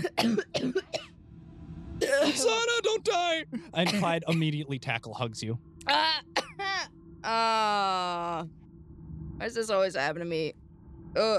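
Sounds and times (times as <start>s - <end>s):
raspy coughs: 0.0s - 1.1s, 2.0s - 2.4s, 3.6s - 4.8s, 6.4s - 6.8s
speech: 0.1s - 0.5s, 2.4s - 6.3s, 7.2s - 8.6s, 9.4s - 11.3s.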